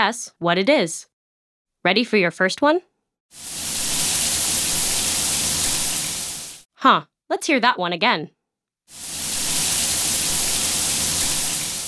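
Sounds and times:
speech: 0.0 - 1.1, 1.8 - 3.6, 6.8 - 9.1
hot shower water pouring: 3.4 - 6.7, 8.9 - 11.8.

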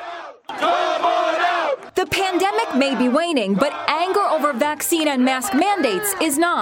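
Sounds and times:
large protest crowd of city workers shouting outdoors at city hall: 0.0 - 6.6
speech: 2.4 - 6.6.

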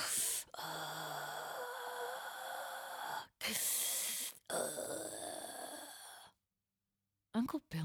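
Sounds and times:
voice imitating heavy breathing of a harassing phone caller: 0.0 - 6.4.

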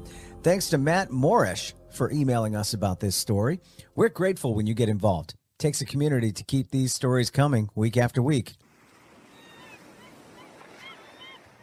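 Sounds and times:
speech: 0.4 - 8.6
calm sea waves lapping at the harbor shore by Gloucester: 8.6 - 11.6
thin high seabird cries: 9.2 - 11.6.

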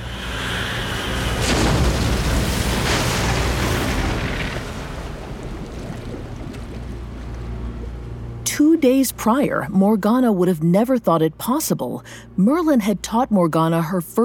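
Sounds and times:
deep rolling rumble of churning water as a boat sinks: 0.0 - 11.2
boat cracking in two on the ocean: 1.3 - 7.4
speech: 8.8 - 14.2.

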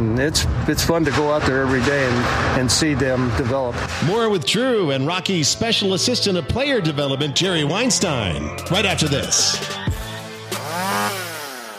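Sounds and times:
speech: 0.2 - 10.0
chainsaw engine idling and revving: 9.9 - 11.7.

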